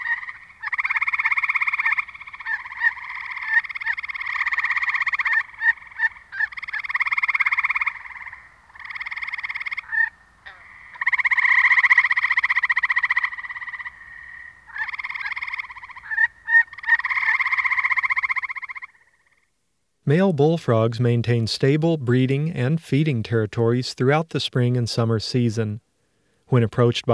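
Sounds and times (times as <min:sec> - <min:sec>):
dense chorus of gray tree frogs trilling: 0:00.0 - 0:19.6
speech: 0:20.1 - 0:25.8, 0:26.5 - 0:27.1.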